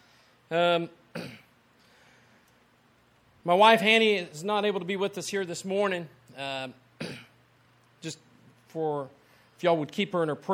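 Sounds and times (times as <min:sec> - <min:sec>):
speech: 0:00.5 - 0:01.4, 0:03.4 - 0:07.3, 0:08.0 - 0:10.5
person clearing throat: 0:01.1 - 0:01.5, 0:07.0 - 0:07.4
person coughing: 0:01.1 - 0:01.5, 0:07.0 - 0:07.4.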